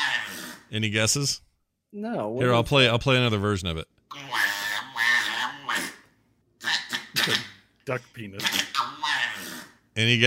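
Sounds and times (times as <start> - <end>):
one-year-old boy making squawking vocal noises: 0.0 - 0.7, 4.1 - 7.6, 8.4 - 9.8
speech: 0.7 - 4.0, 7.3 - 8.8, 10.0 - 10.2.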